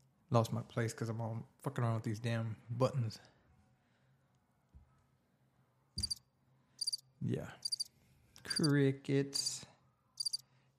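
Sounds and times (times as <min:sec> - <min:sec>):
speech: 0:00.3 - 0:03.4, 0:07.2 - 0:07.7, 0:08.5 - 0:09.7
crickets chirping: 0:06.0 - 0:06.2, 0:06.8 - 0:07.0, 0:07.6 - 0:07.9, 0:10.2 - 0:10.4.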